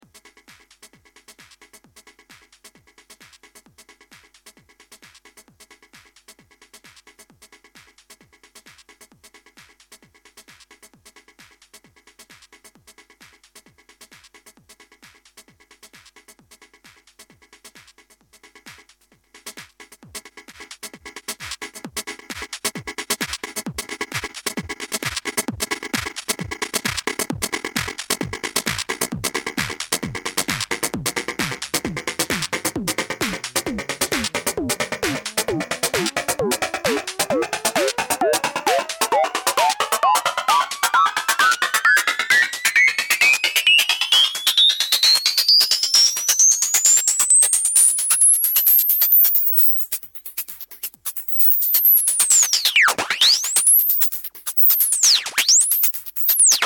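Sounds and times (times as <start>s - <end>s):
drum loop: 23.6s - 56.6s.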